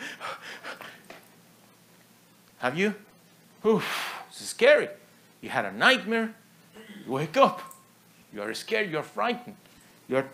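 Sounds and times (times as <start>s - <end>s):
heavy panicked breathing after waking from a nightmare: 0.0s - 1.1s
speech: 2.6s - 6.4s, 7.1s - 7.7s, 8.3s - 10.3s.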